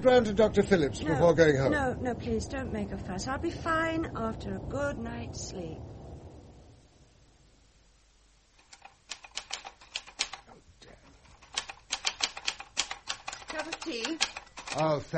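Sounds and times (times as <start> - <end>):
speech: 0.0 - 6.0, 13.9 - 15.1
soft hiss: 0.0 - 11.9
typing keystrokes: 8.6 - 10.4, 11.4 - 15.0.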